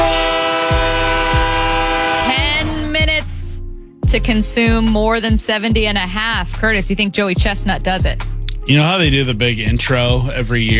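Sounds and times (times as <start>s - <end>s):
train horn blast played as a sound effect: 0.0s - 3.4s
speech: 4.1s - 10.7s.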